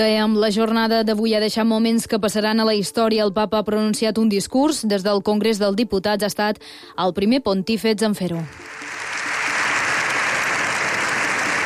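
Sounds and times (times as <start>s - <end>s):
speech: 0.0s - 9.0s
sustained applause from a large audience in a parliament chamber: 8.5s - 11.6s.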